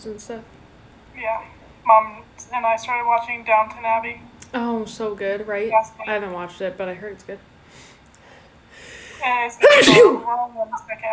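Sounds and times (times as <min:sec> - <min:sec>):
speech: 0:00.0 - 0:00.6, 0:01.2 - 0:07.5, 0:09.2 - 0:11.1
single sharp human sneeze: 0:09.6 - 0:10.3.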